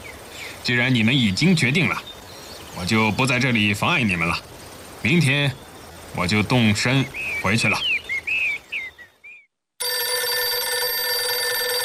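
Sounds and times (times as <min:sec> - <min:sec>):
speech: 0:00.6 - 0:02.1, 0:02.8 - 0:07.9
telephone bell ringing: 0:09.8 - 0:11.8.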